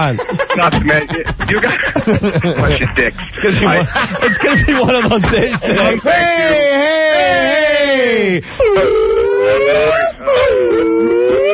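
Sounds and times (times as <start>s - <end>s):
speech: 0.0s - 11.2s
laughter: 0.0s - 11.5s
people howling in a studio with long wavering wails: 5.7s - 11.5s.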